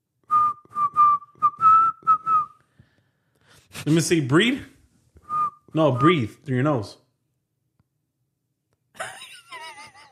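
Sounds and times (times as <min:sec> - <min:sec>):
person whistling a steady level tone: 0:00.2 - 0:02.7, 0:05.2 - 0:06.3
speech: 0:03.7 - 0:04.8, 0:05.8 - 0:07.0
laughter: 0:09.0 - 0:10.1.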